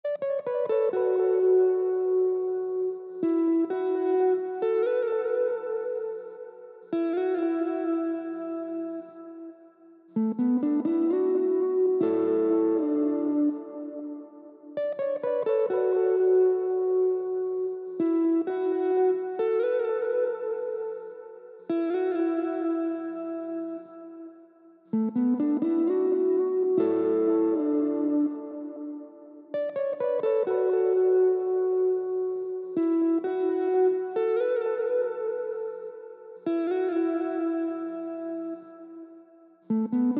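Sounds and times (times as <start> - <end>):
130 BPM D major lead guitar melody loop: 0.1 - 40.1.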